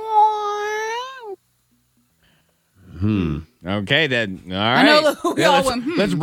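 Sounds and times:
person imitating a cat meow: 0.0 - 1.4
speech: 3.0 - 6.2.

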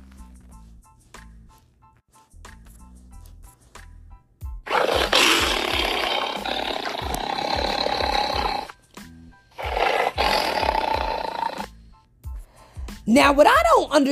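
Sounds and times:
tiger roaring: 4.7 - 8.7, 9.6 - 11.7
speech: 13.2 - 14.1.

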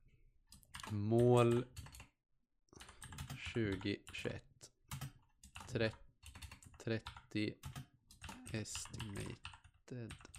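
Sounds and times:
typing on a computer keyboard: 0.5 - 2.1, 2.8 - 4.0, 4.9 - 10.3
speech: 0.9 - 2.0, 3.6 - 4.7, 5.7 - 6.0, 6.8 - 7.8, 8.5 - 10.3.

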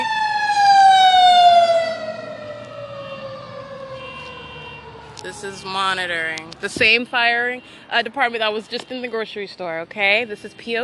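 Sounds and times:
emergency vehicle siren passing: 0.0 - 6.8
speech: 5.4 - 10.8.

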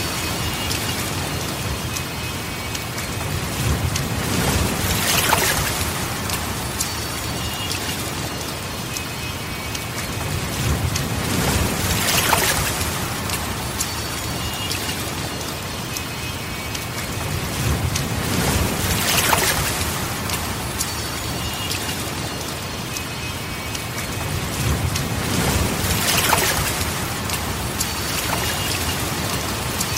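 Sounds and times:
steady rain: 0.0 - 29.8.

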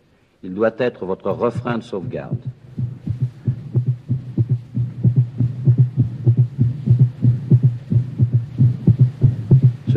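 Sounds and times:
speech: 0.4 - 2.6
fast heartbeat of a dying man: 1.3 - 9.9
constant low hum: 1.5 - 9.9.

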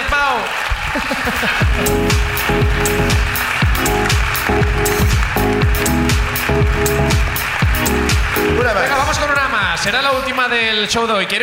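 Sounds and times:
audience at a live show clapping: 0.0 - 11.4
laughter: 0.8 - 1.9
speech: 9.8 - 11.4.

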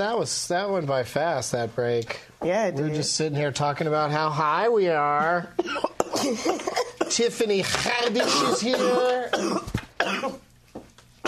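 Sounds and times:
speech: 0.0 - 10.4
person coughing after smoking: 5.6 - 7.3, 8.1 - 10.4.

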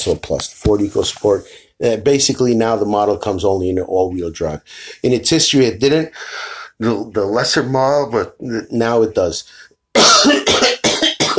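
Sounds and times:
speech: 0.0 - 10.8
person coughing harshly: 10.0 - 11.3.

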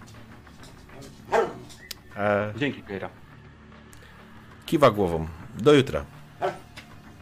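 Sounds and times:
dog barking: 1.3 - 1.7, 6.4 - 6.7
speech: 2.2 - 3.2, 4.7 - 6.6.

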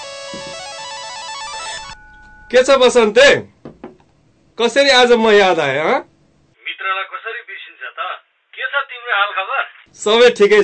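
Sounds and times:
phone ringtone with bright repeating electronic melody: 0.0 - 3.0
quiet hum: 0.0 - 6.6
speech: 2.5 - 3.5, 4.6 - 6.1, 9.1 - 10.6.

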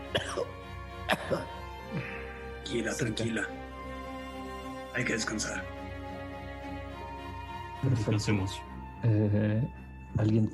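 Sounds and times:
person faking wet harsh coughing as coughing blood: 0.1 - 2.0
speech: 2.7 - 3.6, 5.0 - 5.8, 7.8 - 10.5.

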